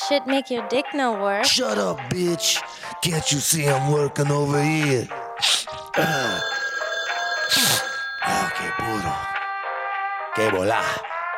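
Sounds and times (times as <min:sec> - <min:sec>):
speech: 0:00.1 - 0:06.6, 0:07.5 - 0:09.3, 0:10.4 - 0:11.1
telephone ringing: 0:06.0 - 0:09.8.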